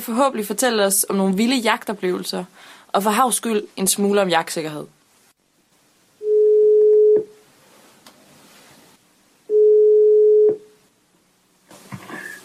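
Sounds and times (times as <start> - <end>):
speech: 0.0 - 5.0
telephone ringback tone: 6.2 - 7.3, 9.5 - 10.6.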